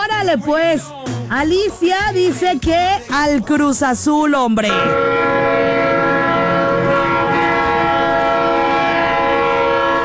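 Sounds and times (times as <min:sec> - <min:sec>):
speech: 0:00.2 - 0:05.6
low rumbling rail noise of a passing train: 0:04.7 - 0:10.0
train horn multi-tone blast: 0:04.7 - 0:10.0.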